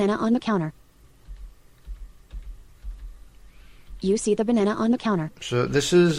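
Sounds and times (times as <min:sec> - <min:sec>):
speech: 0:00.0 - 0:00.8, 0:04.0 - 0:06.1
keys tapped on a computer keyboard: 0:01.2 - 0:04.0.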